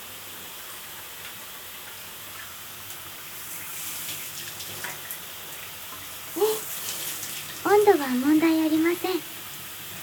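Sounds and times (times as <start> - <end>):
steady shower spray: 3.2 - 10.0
speech: 7.8 - 9.3.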